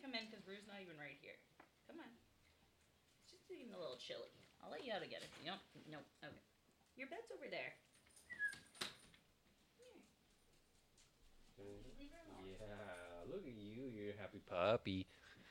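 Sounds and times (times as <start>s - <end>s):
speech: 0.0s - 2.3s, 3.3s - 7.9s, 11.6s - 15.3s
female puppy whining and whimpering: 8.3s - 8.7s.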